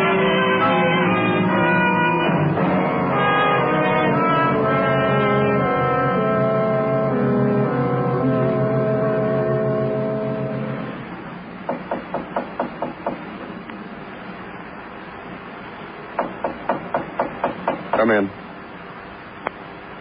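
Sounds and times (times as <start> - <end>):
low hum: 0.0 - 19.9
sharp raps knocking on a door: 11.7 - 13.3, 16.2 - 18.2.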